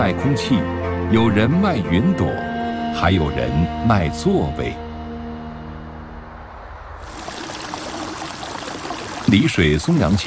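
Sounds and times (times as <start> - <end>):
speech: 0.1 - 4.8, 9.3 - 10.2
stream water rushing by a small bridge in Songzhuang Village, Songyang County, China: 7.0 - 10.2.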